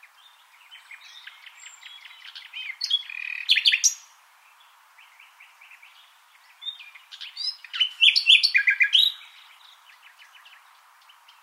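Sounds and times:
common nightingale singing: 0.0 - 11.4.

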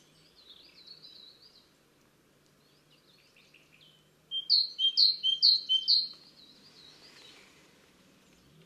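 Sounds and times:
faint steady background noise: 0.0 - 8.6
great tit calling: 4.3 - 6.2.

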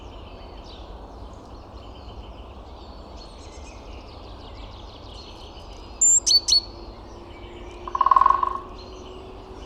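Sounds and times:
great tit Parus major calling: 6.0 - 6.7.

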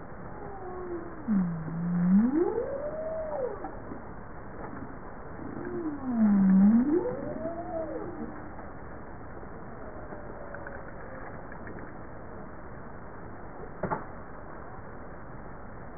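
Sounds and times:
constant background rumble: 0.0 - 15.9
bowhead whale moans: 0.3 - 4.1, 5.4 - 8.6.

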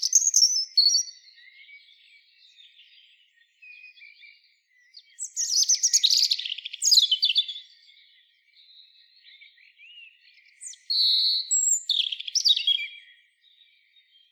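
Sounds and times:
European robin (Erithacus rubecula) singing: 0.0 - 14.3.

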